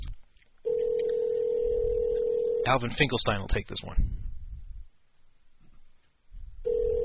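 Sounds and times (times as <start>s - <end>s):
telephone tone on a phone line during an outgoing call: 0.6s - 2.7s, 6.6s - 7.0s
speech: 2.6s - 4.2s.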